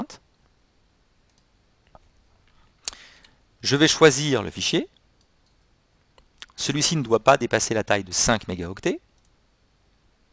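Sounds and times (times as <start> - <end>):
quiet hiss: 0.0 - 10.3
computer mouse click on a web page link: 1.3 - 2.1
speech: 3.6 - 4.9, 6.6 - 9.0.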